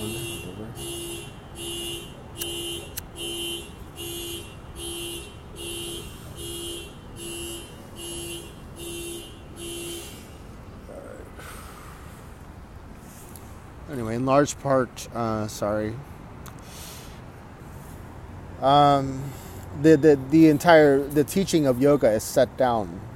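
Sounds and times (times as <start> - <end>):
car alarm honking outdoors: 0.0 - 10.3
low traffic rumble: 0.0 - 23.1
speech: 14.3 - 16.1, 18.6 - 23.1.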